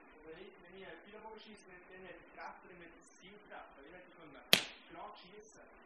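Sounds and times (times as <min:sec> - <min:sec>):
man talking: 0:00.2 - 0:05.7
bow shooting an arrow: 0:04.5 - 0:04.9.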